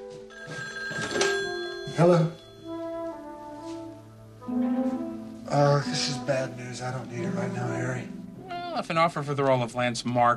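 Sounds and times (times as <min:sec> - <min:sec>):
telephone ringing with an electronic bell tone: 0:00.0 - 0:03.3
speech: 0:02.0 - 0:02.4, 0:05.6 - 0:08.2, 0:08.8 - 0:10.3.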